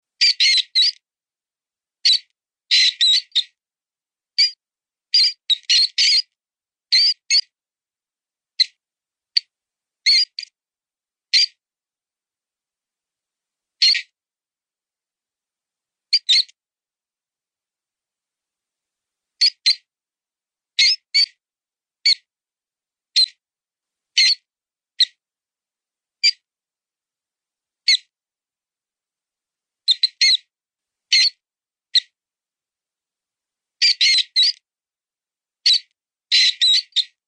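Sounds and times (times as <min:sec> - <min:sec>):
mouse sound: 0:00.2 - 0:01.0, 0:02.0 - 0:03.6, 0:04.4 - 0:07.6, 0:08.6 - 0:10.6, 0:11.3 - 0:11.6, 0:13.8 - 0:14.2, 0:16.1 - 0:16.6, 0:19.4 - 0:19.9, 0:20.8 - 0:21.4, 0:22.0 - 0:22.3, 0:23.1 - 0:23.4, 0:24.2 - 0:25.2, 0:26.2 - 0:26.4, 0:27.8 - 0:28.1, 0:29.9 - 0:30.5, 0:31.1 - 0:32.2, 0:33.8 - 0:34.6, 0:35.6 - 0:37.2.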